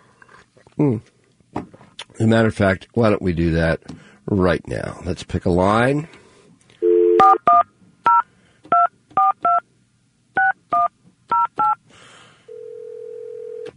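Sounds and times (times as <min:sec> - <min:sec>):
speech: 0:00.8 - 0:01.6, 0:02.2 - 0:06.2
telephone dial tone: 0:06.8 - 0:07.4, 0:12.5 - 0:13.7
touch-tone telephone keypad beeps: 0:07.0 - 0:09.6, 0:10.4 - 0:11.8.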